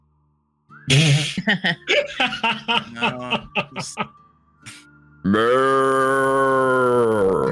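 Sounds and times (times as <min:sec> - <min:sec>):
speech: 0:00.8 - 0:04.2, 0:05.2 - 0:07.5
person talking quickly: 0:00.9 - 0:04.0
person chuckling: 0:00.9 - 0:04.1
person doing a loud drawn-out cow moo impression: 0:05.3 - 0:07.5.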